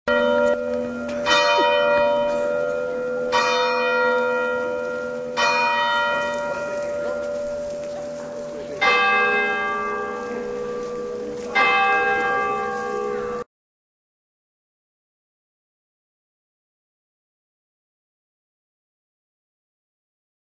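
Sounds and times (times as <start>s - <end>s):
town hall tower bell striking four o'clock: 0.1s - 13.5s.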